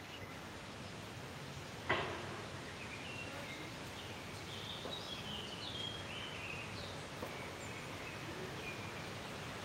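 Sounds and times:
distant Eurasian blackbird singing outdoors: 0.0 - 9.6
steady outdoor hiss: 0.0 - 9.6
sharp knock: 1.9 - 2.4.

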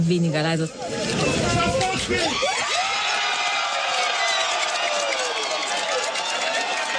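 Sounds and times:
speech: 0.0 - 2.6
large crowd cheering and shouting after election result: 0.7 - 6.9.

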